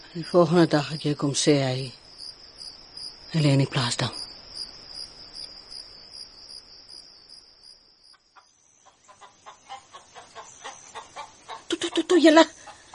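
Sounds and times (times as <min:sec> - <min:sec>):
crickets chirring in a farmyard: 0:00.0 - 0:12.9
speech: 0:00.1 - 0:02.0, 0:03.3 - 0:04.2, 0:12.2 - 0:12.5
chicken clucking in a farmyard: 0:08.4 - 0:12.9.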